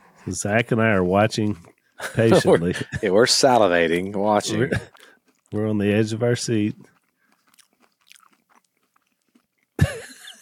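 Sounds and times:
speech: 0.2 - 6.9
people chewing a biscuit from Spain: 1.1 - 10.3
laughter: 2.0 - 4.9, 9.8 - 10.3.

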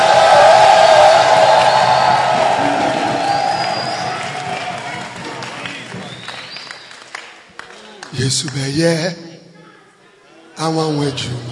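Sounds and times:
large crowd roaring and cheering: 0.0 - 6.2
audience clapping: 0.0 - 8.8
speech: 8.3 - 9.2, 10.6 - 11.5.

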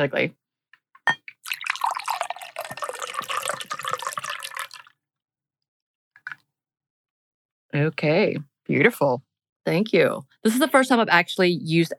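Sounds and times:
speech: 0.0 - 0.4, 7.8 - 11.9
glass clink: 1.1 - 1.3
cocktail pouring into a glass: 1.2 - 5.0.

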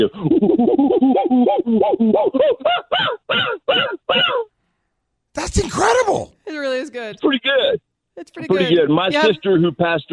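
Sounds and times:
man imitating monkey calls: 0.0 - 3.0
speech: 0.0 - 4.3, 5.4 - 10.1.

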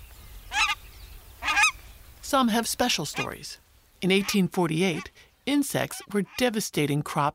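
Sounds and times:
faint noise: 0.0 - 7.3
nene Hawaiian goose honking: 0.5 - 0.8, 1.4 - 1.8, 3.1 - 3.4, 4.1 - 5.1, 5.8 - 6.5
speech: 2.3 - 7.3.

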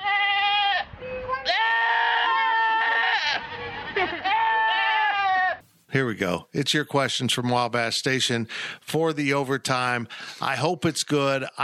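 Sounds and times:
goats screaming with long strained bleats: 0.0 - 5.7
speech: 5.9 - 11.6.

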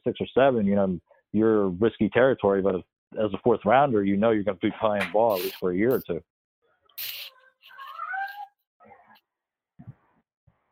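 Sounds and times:
speech: 0.0 - 6.4, 7.0 - 7.2
cat meowing: 7.2 - 9.2.

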